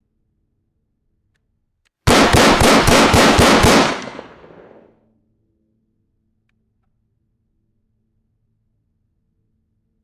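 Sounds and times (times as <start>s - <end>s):
rapid semi automatic pistol gunshots outdoors: 2.1s - 4.9s.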